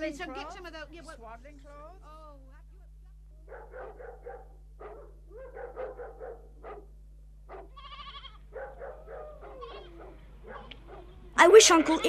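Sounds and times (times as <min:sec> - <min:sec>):
speech: 0:00.0 - 0:02.5, 0:11.4 - 0:12.0
low constant hum: 0:00.0 - 0:12.0
flock of sheep bleating: 0:07.5 - 0:08.5, 0:09.4 - 0:10.2, 0:11.7 - 0:12.0.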